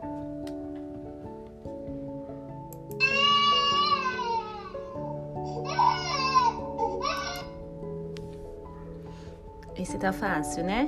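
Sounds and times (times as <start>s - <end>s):
soft steady music: 0.0s - 10.8s
baby crying: 3.0s - 7.6s
speech: 9.8s - 10.8s.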